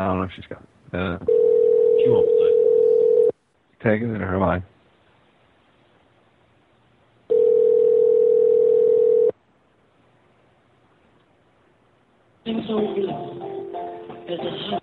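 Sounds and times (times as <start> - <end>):
speech: 0.0 - 2.7, 3.8 - 4.7
electronic ringback tone over a phone line: 1.3 - 3.3, 7.3 - 9.3.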